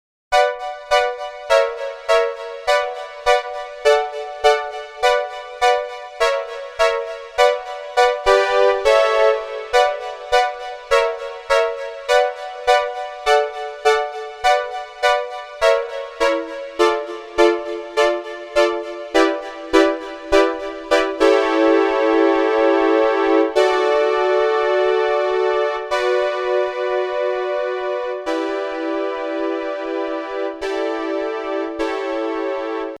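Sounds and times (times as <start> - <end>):
synth brass: 0.3 - 32.9.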